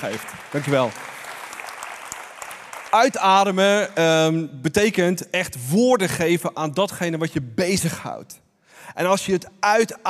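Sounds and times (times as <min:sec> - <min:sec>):
speech: 0:00.0 - 0:01.1, 0:02.9 - 0:10.0
audience applause with many hands clapping: 0:00.0 - 0:03.8.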